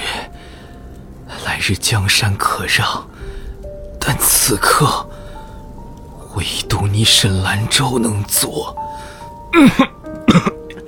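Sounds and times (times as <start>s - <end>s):
speech: 1.5s - 3.1s, 4.0s - 5.1s, 6.4s - 8.8s, 9.5s - 10.5s
man with a damaged throat coughing up blood: 9.5s - 10.8s.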